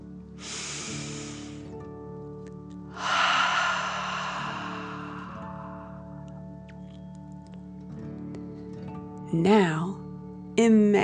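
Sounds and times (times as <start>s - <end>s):
person taking deep breaths during a guided breathing exercise: 0.4s - 1.7s, 2.9s - 6.4s
speech: 9.3s - 10.0s, 10.6s - 11.0s.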